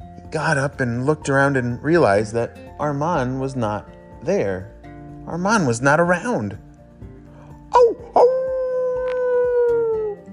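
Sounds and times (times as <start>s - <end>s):
speech: 0.3s - 6.6s
single loud dog howl: 7.8s - 10.3s.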